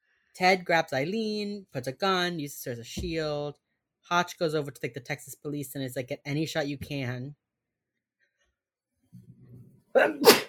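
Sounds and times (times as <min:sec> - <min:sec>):
speech: 0:00.4 - 0:07.4, 0:10.0 - 0:10.4
loud sneeze with breathy intake: 0:10.0 - 0:10.4.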